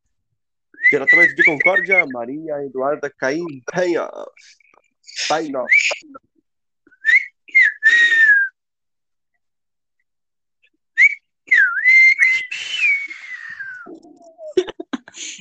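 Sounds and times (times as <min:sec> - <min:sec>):
person attempting to whistle: 0:00.8 - 0:02.1, 0:04.6 - 0:06.3, 0:06.9 - 0:08.6, 0:11.0 - 0:14.6
speech: 0:00.9 - 0:04.6, 0:05.2 - 0:06.3.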